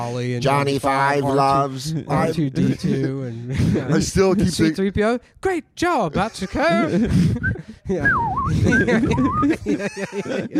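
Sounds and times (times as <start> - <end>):
speech: 0.0 - 10.5
people laughing: 1.6 - 4.8, 6.2 - 10.5
wolf whistle: 7.4 - 9.4.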